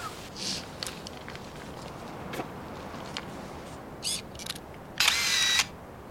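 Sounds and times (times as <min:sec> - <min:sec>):
faint hissy background: 0:00.0 - 0:05.0
camera shutter clicks in a film scene: 0:04.1 - 0:05.7.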